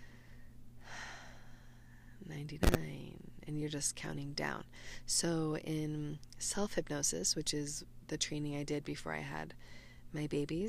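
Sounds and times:
slow deep breath drawn in: 0:00.0 - 0:02.2, 0:09.6 - 0:10.1
speech: 0:02.2 - 0:10.6.

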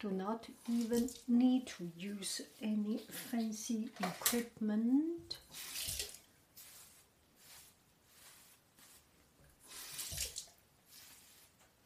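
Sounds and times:
speech: 0:00.0 - 0:05.8
water running from a tap: 0:05.5 - 0:06.2, 0:09.7 - 0:10.5.

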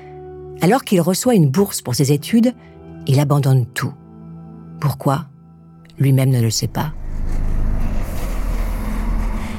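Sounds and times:
speech: 0:00.6 - 0:04.0, 0:04.8 - 0:05.3, 0:06.0 - 0:07.0
bus engine rumbling: 0:06.7 - 0:09.5.

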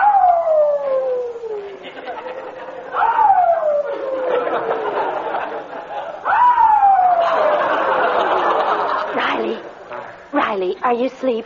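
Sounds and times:
new puppy howling in a garage at night: 0:00.0 - 0:01.6, 0:03.0 - 0:04.9
laughter: 0:01.6 - 0:06.4, 0:07.0 - 0:09.8
speech: 0:10.9 - 0:11.4.

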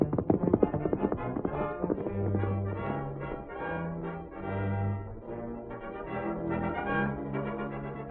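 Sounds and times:
hooves of a horse being ridden at speed clip-clopping: 0:00.0 - 0:03.6
sustained musical backing: 0:00.0 - 0:08.0.

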